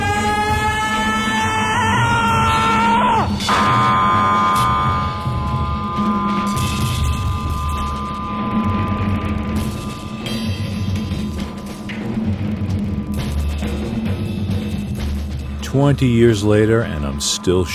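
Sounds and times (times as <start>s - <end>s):
human screams with electrical effects: 0.0s - 12.5s
harsh droning noise from an early VCS3 analog synthesizer: 0.0s - 17.7s
speech: 15.8s - 17.7s.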